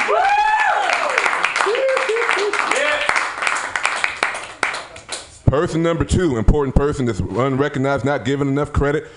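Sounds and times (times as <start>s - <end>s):
crowd whooping and cheering: 0.0s - 3.1s
crowd applauding: 0.0s - 5.2s
speech: 5.5s - 9.1s.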